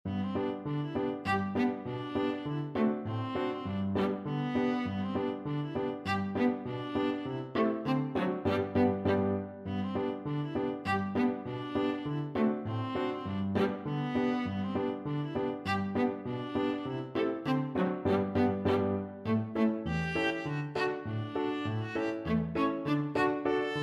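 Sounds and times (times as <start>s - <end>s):
viola playing a polka: 0.1s - 23.8s.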